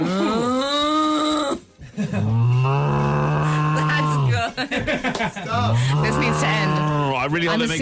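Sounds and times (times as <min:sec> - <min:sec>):
human voice imitating a cow mooing: 0:00.0 - 0:01.6, 0:02.3 - 0:04.4, 0:05.6 - 0:07.3
laughter: 0:01.8 - 0:02.6, 0:03.6 - 0:06.5
speech: 0:04.6 - 0:07.8.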